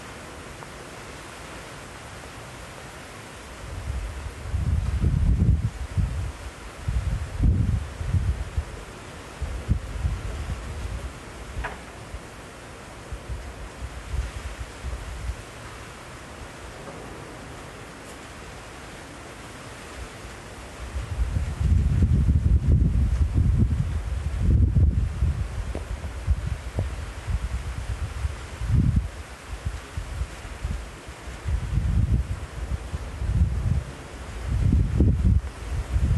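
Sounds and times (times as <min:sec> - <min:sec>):
strong wind gusts on the Basque coast of southwest France: 0:03.4 - 0:36.1.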